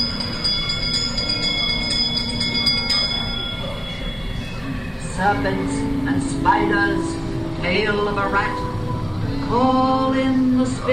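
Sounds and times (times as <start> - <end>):
speech: 0.0 - 0.2, 5.2 - 8.7, 9.5 - 10.9
small bell ringing: 0.0 - 5.0
low rumbling background: 0.0 - 10.8.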